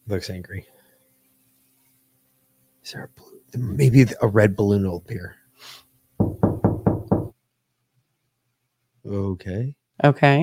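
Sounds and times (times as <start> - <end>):
speech: 0.1 - 0.8, 2.9 - 5.8, 9.0 - 10.4
firm knocking on a door: 6.2 - 7.4.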